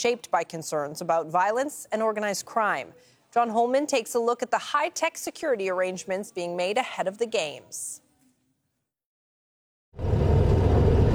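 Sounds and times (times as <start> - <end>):
speech: 0.0 - 8.0
heavy vehicle engine running: 10.0 - 11.1.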